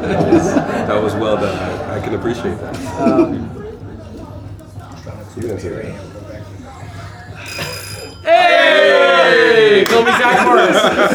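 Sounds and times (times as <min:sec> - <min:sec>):
speech: 0:00.0 - 0:03.6, 0:05.4 - 0:06.1
laughter: 0:00.0 - 0:11.1
people chatting: 0:00.0 - 0:11.1
telephone bell ringing: 0:06.7 - 0:09.7.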